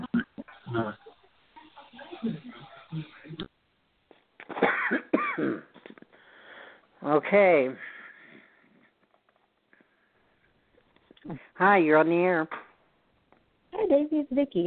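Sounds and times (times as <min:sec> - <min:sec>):
speech: 0:00.7 - 0:01.0, 0:07.1 - 0:07.9, 0:11.6 - 0:12.6, 0:14.0 - 0:14.6
harsh hacking coughs: 0:04.4 - 0:06.1.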